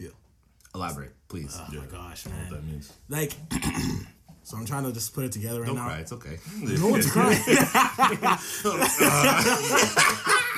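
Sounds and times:
speech: 0.1 - 10.4
person clearing throat: 3.5 - 4.2
person coughing: 3.5 - 4.2
chuckles and laughter: 6.9 - 10.5.

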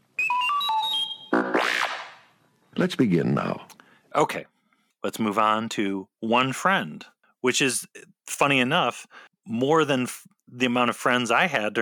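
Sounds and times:
cute robot droid beeping with stepped electronic tones and buzzy warble: 0.2 - 1.9
speech: 2.8 - 11.8.

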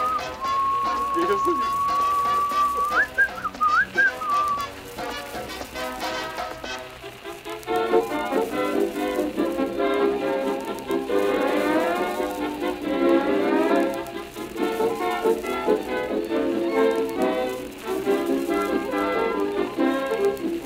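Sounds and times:
person whistling: 0.0 - 4.7
steady rain-like hissing wash: 0.0 - 20.6
speech: 1.2 - 1.9.

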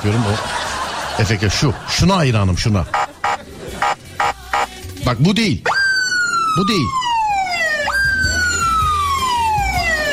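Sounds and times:
speech: 0.0 - 3.0, 5.1 - 5.7, 6.6 - 7.0
laughter: 0.0 - 4.8
police car siren wailing: 5.6 - 10.1.

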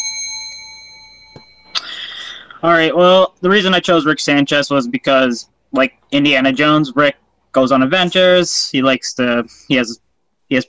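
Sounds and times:
small bell rung to signal the start: 0.0 - 2.4
speech: 2.6 - 10.6.

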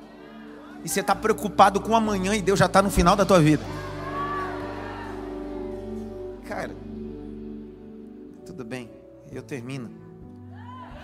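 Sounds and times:
crowd of voices shouting and cheering: 0.0 - 1.8, 2.5 - 7.0, 10.5 - 11.0
speech: 0.8 - 3.8, 9.5 - 10.0.

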